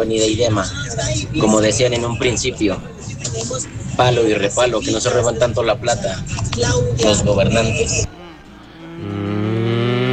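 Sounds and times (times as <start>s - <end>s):
speech: 0.0s - 8.1s
single cow mooing in a low drawn-out bellow: 8.0s - 10.1s.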